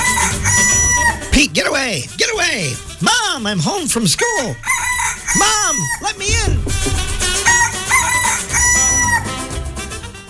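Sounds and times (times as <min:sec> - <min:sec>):
speckled rooster crowing: 0:00.0 - 0:01.2, 0:04.2 - 0:06.1, 0:07.3 - 0:09.4
speech: 0:01.5 - 0:07.1.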